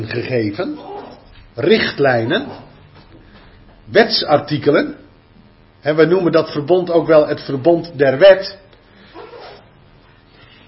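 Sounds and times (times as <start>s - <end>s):
speech: 0.0s - 0.9s, 1.6s - 2.7s, 3.9s - 5.0s, 5.8s - 8.6s
dog sneezing: 9.1s - 9.7s.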